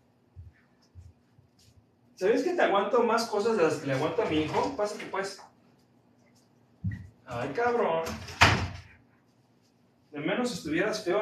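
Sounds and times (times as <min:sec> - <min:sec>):
speech: 0:02.2 - 0:05.5, 0:07.3 - 0:08.4, 0:10.2 - 0:11.2
heavy door swinging open with a thump: 0:08.0 - 0:08.9.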